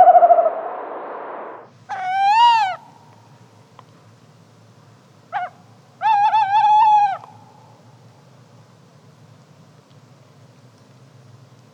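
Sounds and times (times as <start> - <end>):
tawny owl wailing: 0.0 - 0.6, 1.9 - 2.8, 5.4 - 7.3
tawny owl hooting: 0.0 - 1.0, 1.9 - 3.0, 5.3 - 7.6.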